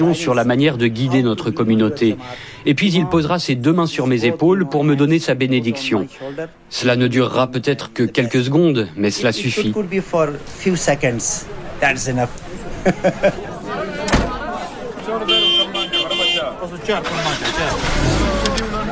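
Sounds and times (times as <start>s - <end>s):
speech: 0.0s - 13.5s, 16.8s - 17.9s
bus engines idling before departure in front of the Jamatrana: 0.0s - 18.9s
busy crowd of voices: 0.0s - 18.9s
laughter: 12.5s - 14.1s
sharp door-like thump: 14.1s - 14.4s.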